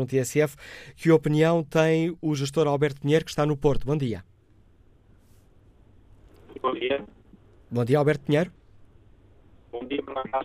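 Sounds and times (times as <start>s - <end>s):
speech: 0.0s - 4.3s, 6.6s - 8.6s, 9.7s - 10.4s
thin band-limited voice through a mobile phone line: 9.7s - 10.4s.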